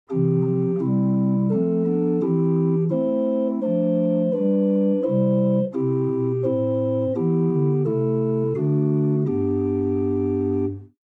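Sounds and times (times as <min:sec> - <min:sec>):
Holzgedeckt 8 stop on a pipe organ: 0:00.1 - 0:10.9.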